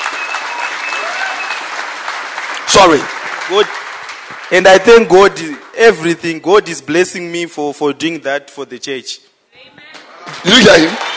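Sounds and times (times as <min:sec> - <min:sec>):
audience clapping at a church gathering: 0:00.0 - 0:06.4, 0:10.0 - 0:11.1
speech: 0:02.7 - 0:03.8, 0:04.5 - 0:09.8, 0:10.4 - 0:11.1.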